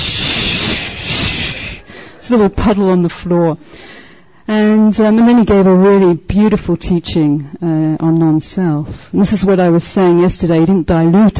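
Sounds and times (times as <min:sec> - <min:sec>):
person making a breathy mouth hiss imitating a deflating balloon: 0:00.0 - 0:01.9
speech: 0:02.3 - 0:03.9, 0:04.5 - 0:11.3.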